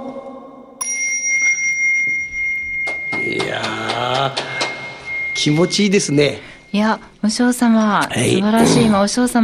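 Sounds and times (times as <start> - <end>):
bell ringing: 0.8 - 7.9
speech: 5.4 - 9.4.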